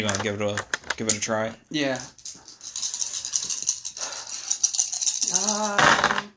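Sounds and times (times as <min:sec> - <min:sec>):
speech: 0:00.0 - 0:02.2, 0:05.3 - 0:06.3
five dice rattling together in a cupped hand: 0:02.0 - 0:06.2
person reacting: 0:05.2 - 0:06.3.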